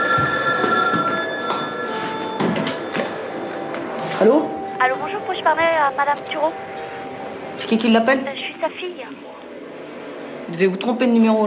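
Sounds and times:
telephone ringing with bright electronic ring: 0.0s - 4.2s
speech: 4.2s - 6.8s, 7.6s - 9.4s, 10.5s - 11.4s.

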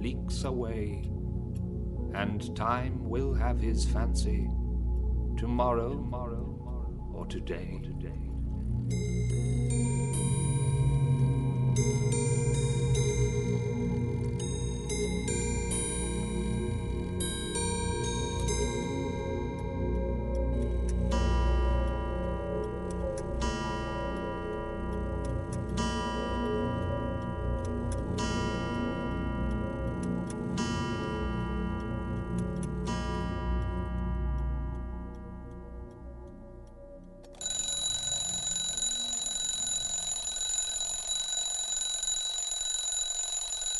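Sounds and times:
speech: 0.0s - 1.2s, 2.1s - 4.6s, 5.4s - 6.6s, 7.2s - 8.3s, 8.9s - 10.3s, 11.8s - 12.3s
many clocks ticking in an antique clock shop: 5.4s - 43.7s
clock chimes in an antique clock shop: 8.9s - 30.0s, 37.4s - 43.7s.

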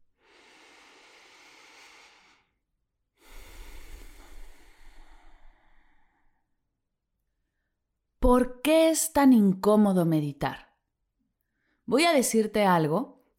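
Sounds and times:
deep breath in and out: 0.0s - 6.6s
speech: 8.2s - 10.7s, 11.9s - 13.2s.

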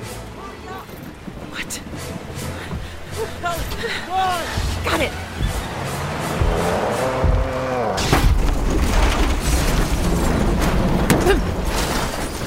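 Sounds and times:
debris rumbling and scraping: 0.2s - 12.4s
rising engine drone: 1.9s - 11.7s
speech: 3.8s - 5.3s
truck hit toward the rear crashing onto its side: 8.0s - 12.4s.

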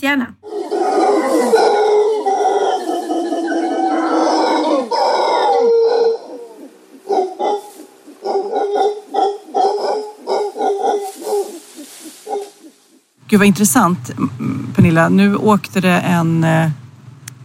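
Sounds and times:
speech: 0.0s - 0.5s, 13.3s - 16.8s
howler monkeys howling outdoors: 0.4s - 13.0s.

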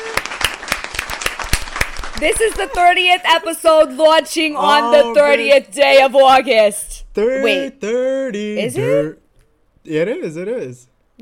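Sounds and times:
burst of applause from many hands clapping: 0.0s - 2.8s
speech: 2.2s - 9.2s, 9.8s - 11.2s.

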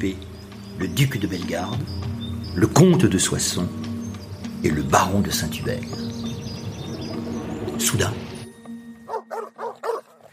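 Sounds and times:
speech: 0.0s - 3.9s, 4.6s - 6.5s, 7.8s - 8.3s
dogs barking: 9.0s - 10.3s.

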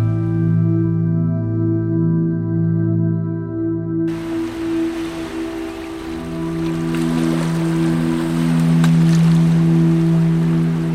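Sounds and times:
soft slow music of low sustained tones: 0.0s - 10.9s
sea waves washing in and out: 4.1s - 10.9s.

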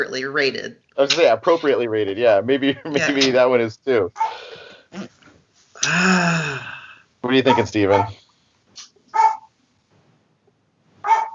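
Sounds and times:
speech: 0.0s - 5.2s, 5.8s - 8.2s
dog barking: 7.5s - 8.2s, 9.1s - 9.5s, 11.0s - 11.3s.

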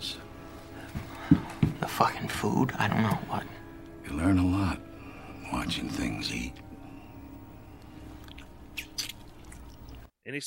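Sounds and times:
speech: 2.0s - 4.9s, 5.6s - 6.6s, 10.3s - 10.4s
fly being crunched in the mouth: 8.2s - 10.0s.

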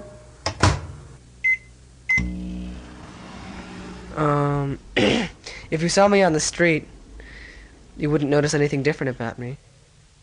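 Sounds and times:
microwave oven starting with a clunk and humming: 0.0s - 4.6s
short electronic beep: 1.5s - 2.6s
speech: 4.2s - 7.0s, 8.0s - 9.7s.

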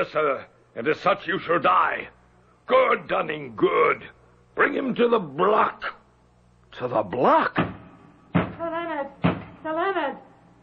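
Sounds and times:
speech: 0.0s - 6.0s, 6.7s - 7.7s, 9.6s - 10.3s
knocking on a wooden door: 7.6s - 8.6s, 9.2s - 9.6s.

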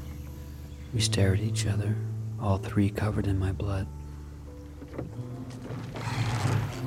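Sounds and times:
speech: 1.0s - 4.0s
oars splashing as a small boat is rowed to shore: 4.7s - 6.8s.

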